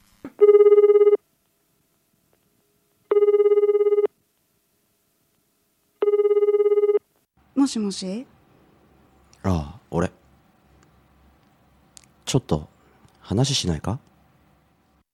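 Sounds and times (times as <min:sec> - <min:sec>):
telephone ringing in electronic bursts: 0:00.4 - 0:01.2, 0:03.1 - 0:04.1, 0:06.0 - 0:07.1
speech: 0:07.7 - 0:08.3, 0:12.3 - 0:14.1.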